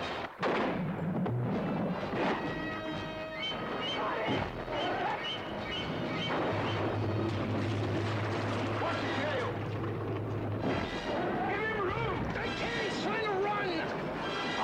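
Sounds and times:
rifle shot fired at an approaching shark: 0.0 - 1.3
sustained musical tones: 1.8 - 14.6.

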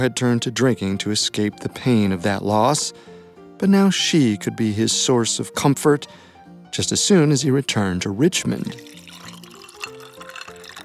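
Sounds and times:
speech: 0.0 - 9.0
tea pouring into a cup: 8.3 - 10.8.

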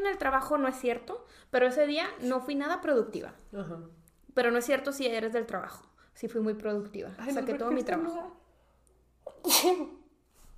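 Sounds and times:
speech: 0.0 - 8.4, 9.4 - 10.0
person sneezing: 9.2 - 10.2.

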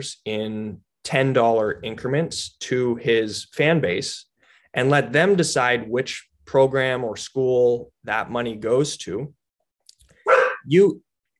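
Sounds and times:
speech: 0.0 - 9.4, 10.7 - 11.0
dog barking: 10.2 - 10.7.

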